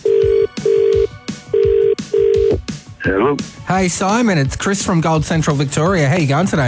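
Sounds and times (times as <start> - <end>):
telephone ringback tone on an outgoing call: 0.0 - 2.6
rhythmic music thumps: 0.0 - 6.6
speech: 3.0 - 6.6.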